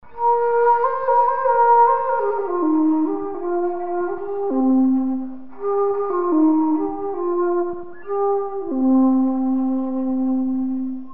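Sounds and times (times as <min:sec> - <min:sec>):
shakuhachi: 0:00.0 - 0:11.1.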